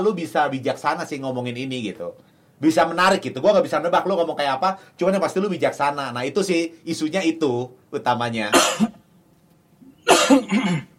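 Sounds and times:
speech: 0:00.0 - 0:08.9, 0:10.3 - 0:10.9
person coughing: 0:08.5 - 0:09.0, 0:10.0 - 0:10.9
throat clearing: 0:09.8 - 0:10.9.

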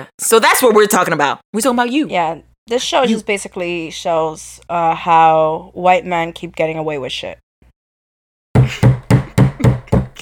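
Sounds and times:
speech: 0:00.0 - 0:07.4
hammer striking a nail: 0:08.6 - 0:10.2.

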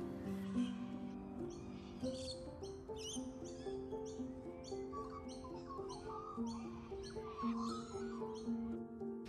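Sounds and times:
galahs calling with harsh screechy chirps: 0:00.3 - 0:09.2.

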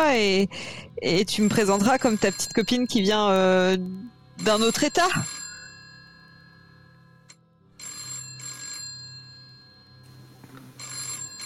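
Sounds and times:
speech: 0:00.0 - 0:05.4
telephone ringing upstairs: 0:01.4 - 0:03.5, 0:04.4 - 0:11.4.

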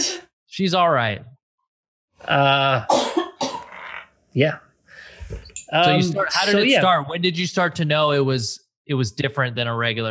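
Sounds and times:
speech: 0:00.6 - 0:01.4, 0:02.2 - 0:03.0, 0:04.4 - 0:04.6, 0:05.3 - 0:10.1
woman coughing: 0:02.9 - 0:03.8.

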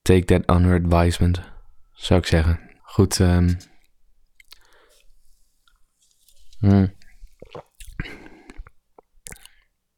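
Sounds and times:
speech: 0:00.1 - 0:03.7, 0:06.6 - 0:08.2
wet chewing and soft crunching of nokko snacks: 0:04.3 - 0:09.7.

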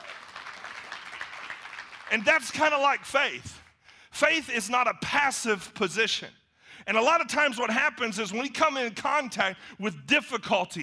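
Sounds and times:
room full of people clapping: 0:00.0 - 0:02.2
speech: 0:02.1 - 0:03.6, 0:04.2 - 0:10.8.

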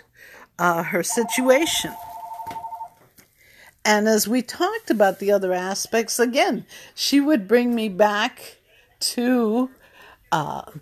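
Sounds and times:
speech: 0:00.6 - 0:02.1, 0:03.9 - 0:10.8
phone electronic ring tone warbling in pulsed beeps: 0:01.1 - 0:03.0.

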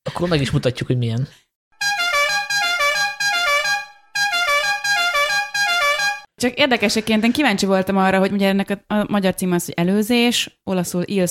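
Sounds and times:
speech: 0:00.2 - 0:01.4, 0:06.4 - 0:11.2
car horn honking in a film: 0:01.8 - 0:06.3.

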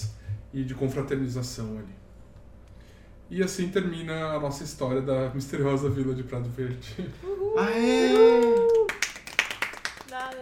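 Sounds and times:
speech: 0:00.5 - 0:02.0, 0:03.3 - 0:08.7
people cheering: 0:07.2 - 0:09.7
hand clapping: 0:08.1 - 0:10.4.

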